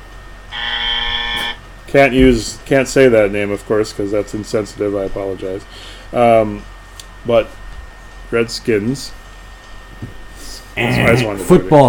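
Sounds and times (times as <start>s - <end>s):
game-show style buzzer sound effect: 0.5s - 1.6s
speech: 1.9s - 7.6s, 8.3s - 9.2s, 10.8s - 11.8s.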